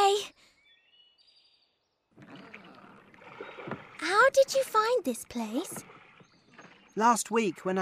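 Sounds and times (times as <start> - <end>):
faint birdsong chirps: 0.0 - 7.8
oars dipping and splashing as small boat is rowed across a lake: 2.1 - 7.8
speech: 4.3 - 5.9, 7.0 - 7.8.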